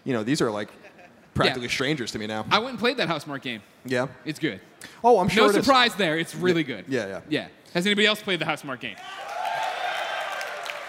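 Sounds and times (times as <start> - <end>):
speech: 0.0 - 9.3
audience applause at a video game panel: 9.0 - 10.8.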